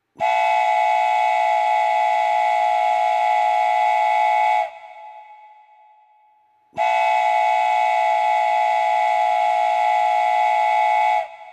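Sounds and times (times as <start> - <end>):
train whistle: 0.1 - 11.5.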